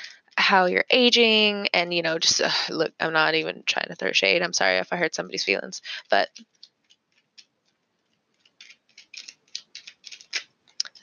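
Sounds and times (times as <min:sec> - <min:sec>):
speech: 0:00.5 - 0:06.6
tarot cards being handled and slid back into the deck: 0:08.5 - 0:10.4.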